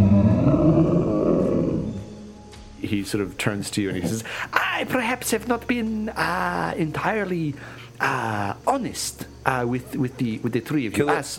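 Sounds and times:
deep bellowing roar from the middle of a village: 0:00.0 - 0:02.2
speech: 0:03.0 - 0:11.3.

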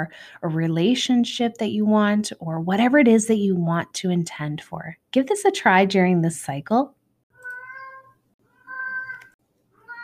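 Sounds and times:
speech: 0:00.0 - 0:07.0
cat meowing: 0:07.4 - 0:10.0.

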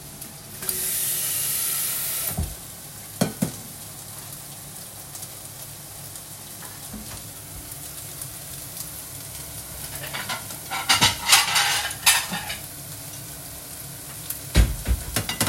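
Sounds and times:
chicken sizzling in a hot pan: 0:00.0 - 0:15.4
stirring and crackling: 0:09.8 - 0:12.7.

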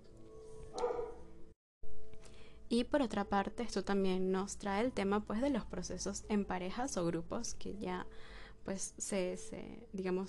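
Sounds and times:
small dog barking: 0:00.8 - 0:01.2
speech: 0:02.7 - 0:10.2.

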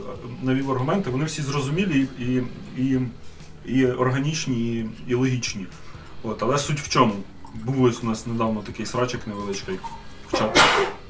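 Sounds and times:
speech: 0:00.0 - 0:10.9
sneeze: 0:10.3 - 0:11.0.

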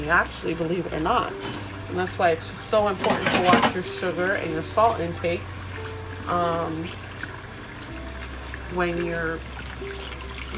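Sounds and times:
tap water running from a faucet while rinsing cutlery: 0:00.0 - 0:10.5
speech: 0:00.1 - 0:05.6, 0:06.3 - 0:07.0, 0:08.7 - 0:10.5
utensils clinking while being rinsed: 0:01.3 - 0:01.7, 0:02.8 - 0:04.6.

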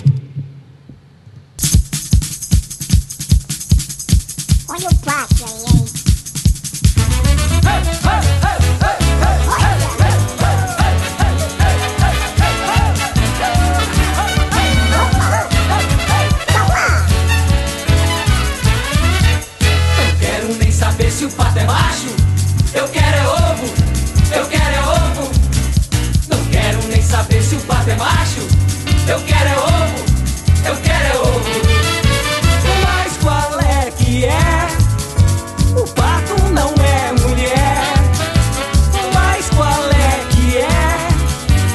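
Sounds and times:
upbeat song with thumping beat: 0:01.6 - 0:41.7.

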